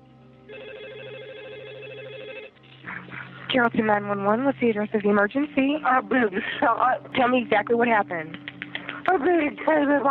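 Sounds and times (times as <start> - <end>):
low hum: 0.0 - 10.0
telephone ringing with a warbling electronic ring: 0.5 - 2.8
speech: 3.5 - 8.4, 9.0 - 10.0.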